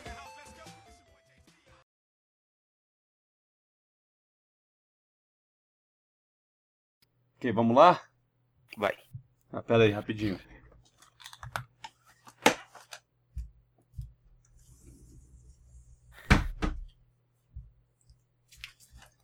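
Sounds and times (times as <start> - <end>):
speech: 7.4 - 8.1, 8.7 - 10.6
wooden cupboard door being handled and shut: 16.1 - 17.0.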